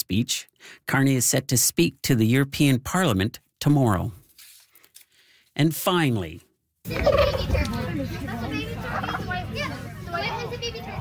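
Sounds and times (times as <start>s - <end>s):
speech: 0.1s - 4.2s, 5.6s - 8.4s
turkey gobbling at a poultry costume contest: 6.9s - 7.7s, 8.8s - 9.4s
steady crowd chatter at a museum country fair: 6.9s - 10.9s.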